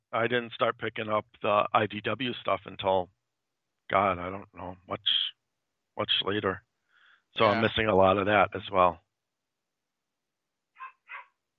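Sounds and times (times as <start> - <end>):
speech: 0.1 - 3.2, 3.9 - 5.4, 6.0 - 6.7, 7.4 - 9.0
dog barking: 10.8 - 11.4.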